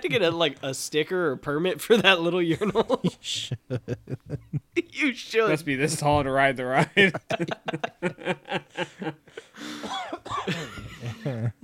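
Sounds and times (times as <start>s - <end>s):
speech: 0.0s - 11.6s
laughter: 1.9s - 4.9s, 6.8s - 11.6s
man coughing harshly: 9.4s - 11.6s.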